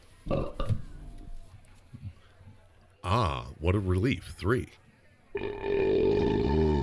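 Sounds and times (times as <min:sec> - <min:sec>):
speech: 0:00.3 - 0:00.6, 0:03.1 - 0:04.8
person belching while drinking beer: 0:05.4 - 0:06.8.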